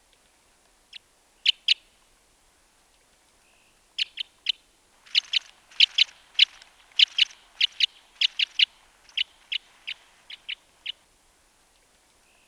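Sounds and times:
Cassia Crossbill kip calls: 5.0 - 11.0.

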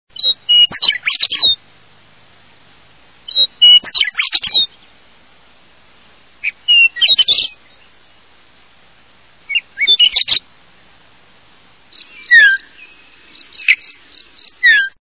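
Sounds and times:
Western Meadowlark songs: 0.1 - 1.7, 2.8 - 5.0, 6.4 - 8.7, 9.4 - 10.5, 11.8 - 15.0.

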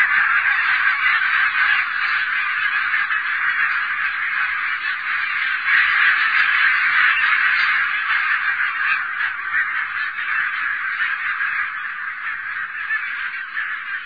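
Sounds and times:
barnacle goose flock barking honks: 0.0 - 14.0.

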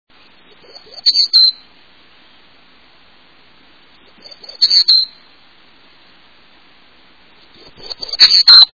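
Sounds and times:
Townsend's Warbler songs: 0.2 - 1.8, 3.9 - 5.4, 7.3 - 8.7.

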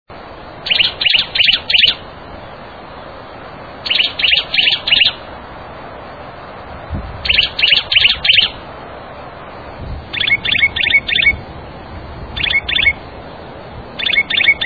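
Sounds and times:
Juniper Titmouse singing: 0.6 - 2.0, 3.8 - 5.3, 7.2 - 8.6, 10.1 - 11.4, 12.4 - 13.0, 14.0 - 14.6.

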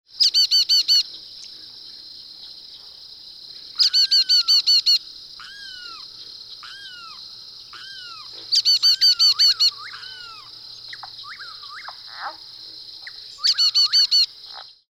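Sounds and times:
brown-headed nuthatch: 0.2 - 1.7, 3.8 - 12.4, 13.0 - 14.7.

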